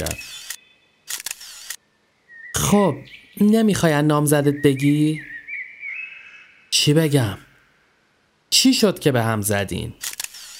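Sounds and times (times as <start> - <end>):
speech: 0.0 - 0.3, 2.7 - 5.3, 6.8 - 7.5, 8.5 - 10.1
camera shutter click taking photos in front of a half-ruined house: 0.1 - 1.8, 10.0 - 10.5
camera film-advance motor whirring: 0.2 - 1.8, 10.0 - 10.5.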